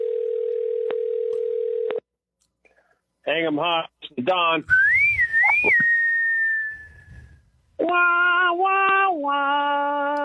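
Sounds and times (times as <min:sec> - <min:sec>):
telephone dial tone: 0:00.0 - 0:02.0
speech: 0:03.3 - 0:04.9, 0:05.6 - 0:05.9, 0:07.8 - 0:10.2.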